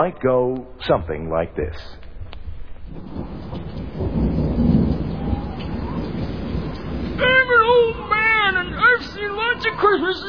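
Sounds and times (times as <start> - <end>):
speech: 0.0 - 2.0, 2.9 - 4.4, 9.2 - 10.2
deep roll of thunder: 2.1 - 10.2
steady rain in a thunderstorm: 2.2 - 10.2.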